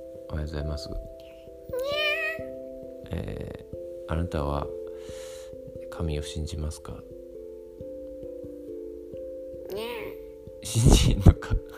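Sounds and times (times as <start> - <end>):
speech: 0.3 - 2.0, 3.1 - 5.3, 6.0 - 7.1, 10.8 - 11.7
cat meowing: 1.7 - 2.5, 9.7 - 10.2.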